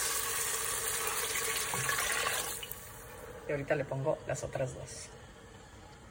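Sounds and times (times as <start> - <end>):
water pouring into a cooking pot: 0.0 - 3.0
speech: 3.5 - 5.2.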